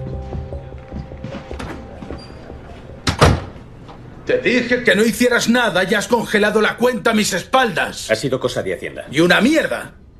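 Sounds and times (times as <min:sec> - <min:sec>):
door pushed shut with a thud: 0:01.5 - 0:03.6
speech: 0:04.3 - 0:10.0.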